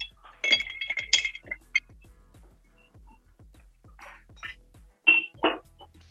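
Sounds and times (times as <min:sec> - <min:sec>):
ice clinking against glass as a drink is stirred: 0:00.0 - 0:01.8.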